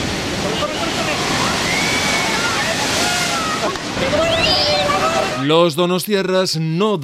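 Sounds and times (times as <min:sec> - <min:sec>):
huge storm waves pounding the seafront of San Sebastián Spain: 0:00.0 - 0:05.6
whistling tones: 0:01.6 - 0:02.6, 0:04.1 - 0:04.9
speech: 0:05.5 - 0:07.0.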